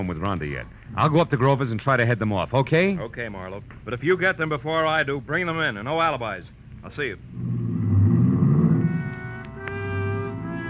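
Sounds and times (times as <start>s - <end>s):
speech: 0.0s - 7.5s
car engine rumbling as the car starts and pulls away: 7.3s - 10.6s.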